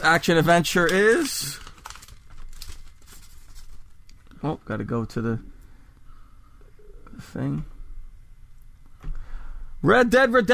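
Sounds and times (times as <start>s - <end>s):
speech: 0.0s - 1.6s, 4.4s - 5.5s, 7.2s - 7.7s, 9.8s - 10.5s
piece of paper being crumpled: 0.0s - 3.9s.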